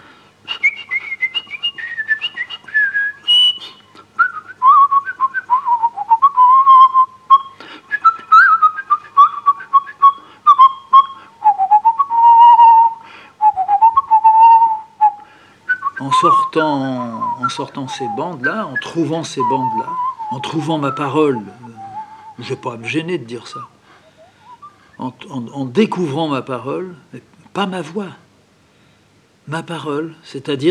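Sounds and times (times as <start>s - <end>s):
person whistling a dance-like musette melody: 0.5s - 23.0s, 24.2s - 24.9s
speech: 16.6s - 21.7s, 22.4s - 23.7s, 25.0s - 28.2s, 29.5s - 30.7s.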